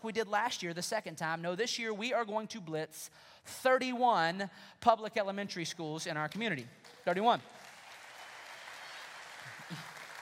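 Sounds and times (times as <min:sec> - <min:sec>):
speech: 0:00.0 - 0:07.6
audience applause during a talk: 0:07.5 - 0:10.2.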